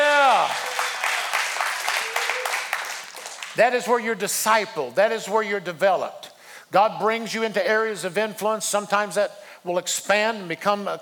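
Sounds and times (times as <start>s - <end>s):
church congregation clapping: 0.0s - 4.0s
speech: 3.6s - 11.0s.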